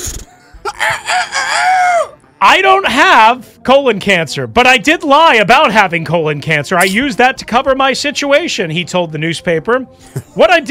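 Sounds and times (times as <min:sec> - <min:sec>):
rooster crowing sound effect: 0:00.7 - 0:02.2
speech: 0:02.4 - 0:10.6.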